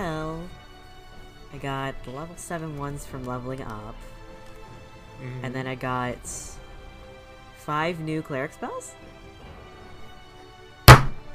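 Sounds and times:
speech: 0:01.5 - 0:04.2, 0:05.2 - 0:06.6, 0:07.7 - 0:09.1
forehead hitting a table: 0:10.9 - 0:11.2.

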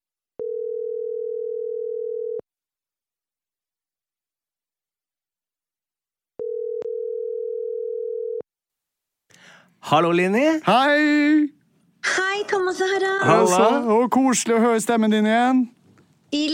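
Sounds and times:
telephone tones ringing as a call is placed: 0:00.4 - 0:02.4, 0:06.4 - 0:08.4
speech: 0:09.8 - 0:16.5.

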